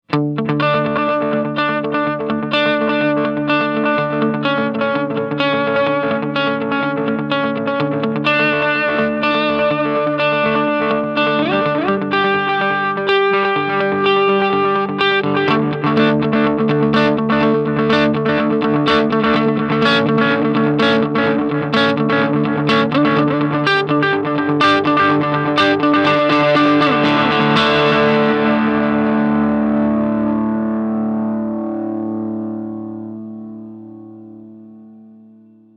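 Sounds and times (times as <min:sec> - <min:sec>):
electric guitar neck pickup with overdrive and delay: 0:00.0 - 0:35.7.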